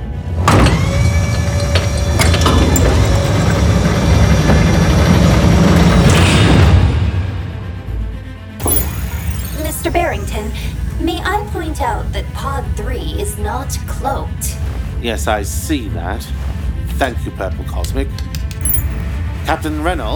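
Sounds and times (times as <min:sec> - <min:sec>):
sci-fi mechanical door sliding open with grinding gears and motor: 0:00.3 - 0:07.0, 0:08.6 - 0:14.8, 0:18.3 - 0:19.2
speech: 0:12.2 - 0:18.3, 0:19.5 - 0:20.1.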